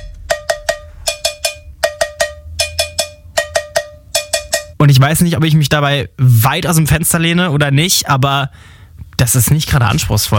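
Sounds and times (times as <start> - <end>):
cowbell played as an instrument in a pop song: 0.0 - 4.9
speech: 4.8 - 10.3.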